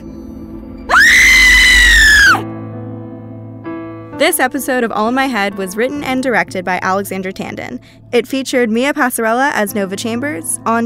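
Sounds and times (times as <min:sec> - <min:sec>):
person screaming: 0:00.9 - 0:02.4
speech: 0:04.2 - 0:10.8.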